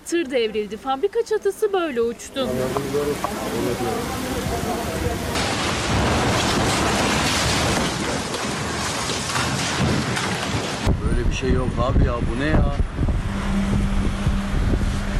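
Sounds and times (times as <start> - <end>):
speech: 0.1 - 5.5, 11.3 - 13.0
heavy rain during a storm in Çatalca Istanbul: 2.4 - 10.9
deep thunder rumbling: 4.0 - 15.1.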